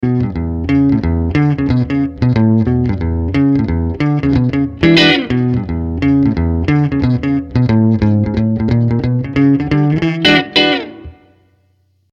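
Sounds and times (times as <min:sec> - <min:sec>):
Ibanez ARX 300 electric guitar on neck pickup: 0:00.0 - 0:11.6.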